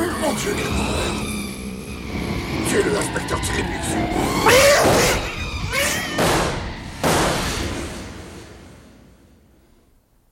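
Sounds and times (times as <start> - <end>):
cat yowling and screeching wildly: 0.0 - 7.0
speech: 0.3 - 1.4, 2.8 - 5.2
heavy crash or thud: 4.4 - 9.9.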